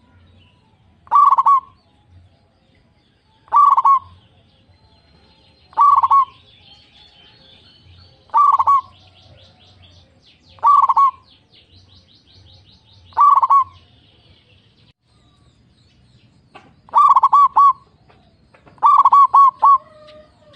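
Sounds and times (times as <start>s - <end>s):
zebra dove cooing: 1.1s - 1.8s, 3.5s - 4.2s, 5.7s - 6.5s, 8.2s - 9.7s, 10.6s - 11.2s, 13.1s - 13.8s, 16.9s - 20.5s.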